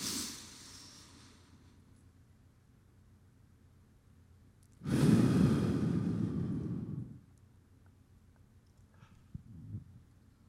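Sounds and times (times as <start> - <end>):
deep nasal inhale and exhale for box breathing: 0.0 - 1.6, 4.8 - 7.3.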